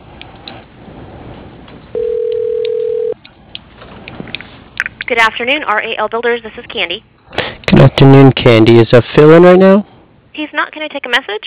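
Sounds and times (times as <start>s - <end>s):
faint noise: 0.0s - 11.4s
telephone ringing tone as a call is transferred: 2.0s - 3.2s
speech: 5.1s - 11.4s.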